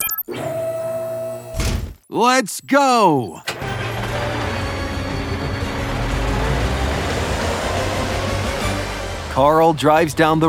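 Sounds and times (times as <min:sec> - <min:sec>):
mechanical whir of doors opening: 0:00.3 - 0:02.0, 0:03.5 - 0:08.9
speech: 0:02.1 - 0:03.6, 0:09.4 - 0:10.4.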